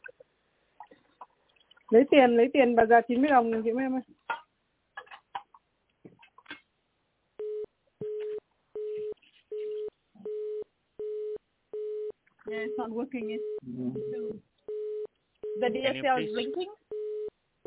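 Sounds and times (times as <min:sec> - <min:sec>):
speech: 0:01.9 - 0:04.2, 0:12.8 - 0:14.5, 0:15.6 - 0:16.8
telephone line busy signal beeps: 0:07.4 - 0:17.6.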